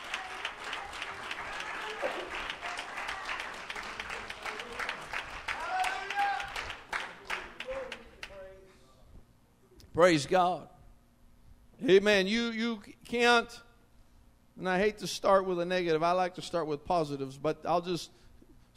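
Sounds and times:
people cheering: 0.0s - 8.1s
room full of people applauding: 0.0s - 8.4s
speech: 10.0s - 10.7s, 11.8s - 13.7s, 14.6s - 18.2s.

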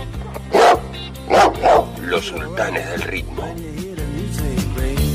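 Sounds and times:
dog barking: 0.1s - 3.6s
speech: 2.2s - 5.0s.

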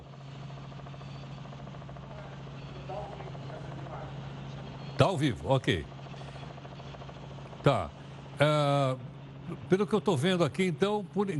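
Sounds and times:
helicopter rotor hum with low engine tone: 0.0s - 11.3s
faint indistinct voices: 1.4s - 5.2s
speech: 5.0s - 5.9s, 7.6s - 11.3s.

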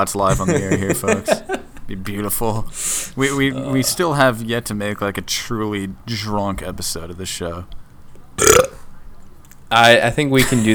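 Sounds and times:
speech: 0.0s - 7.8s, 8.4s - 8.8s, 9.7s - 10.7s
laughter: 0.2s - 1.9s
burp: 8.4s - 8.8s.

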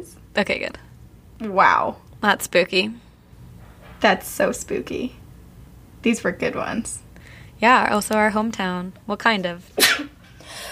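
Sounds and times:
speech: 0.0s - 3.0s, 4.0s - 5.2s, 6.0s - 7.0s, 7.6s - 10.0s
single sharp sneeze: 9.8s - 10.2s.

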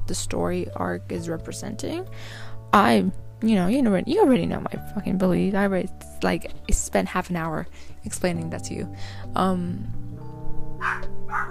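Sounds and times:
speech: 0.1s - 10.0s
dogs barking: 10.8s - 11.4s.

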